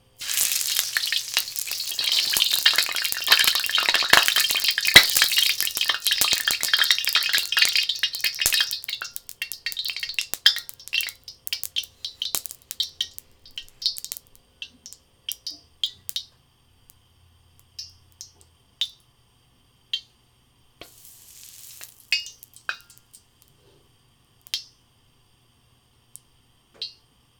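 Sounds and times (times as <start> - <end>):
loud wok cooking: 0.0 - 13.2, 20.8 - 22.8.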